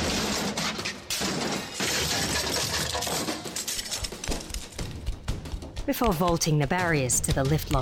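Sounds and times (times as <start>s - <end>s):
security console and computer being smashed: 0.0s - 4.8s
speech: 5.9s - 7.8s.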